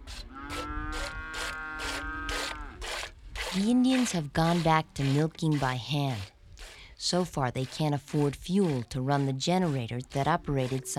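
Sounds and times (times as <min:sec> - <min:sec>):
old heifers mooing in a pasture: 0:00.1 - 0:02.8
speech: 0:03.6 - 0:06.4, 0:07.0 - 0:10.9.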